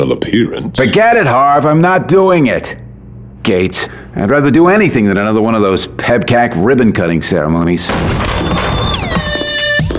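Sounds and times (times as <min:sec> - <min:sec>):
speech: 0:00.0 - 0:02.8, 0:03.4 - 0:08.7
office door being smashed in: 0:07.9 - 0:09.9.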